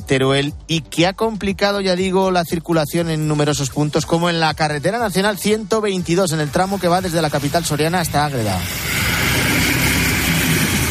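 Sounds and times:
speech: 0.1 - 9.4
heavy military emergency vehicle engines rumbling in snow: 7.1 - 10.8.

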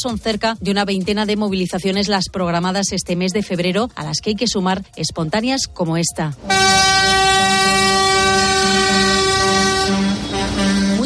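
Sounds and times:
speech: 0.0 - 7.2
heavy tractor engines rumbling through city streets in protest: 6.4 - 11.0
loud sustained horn blaring at tractor protest: 6.4 - 11.0.

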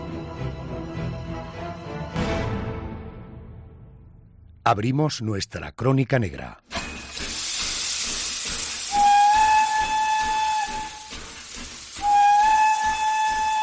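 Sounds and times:
speech: 4.7 - 6.7
steam train hissing at night: 6.7 - 13.6
steam train whistle blowing: 8.6 - 13.6.

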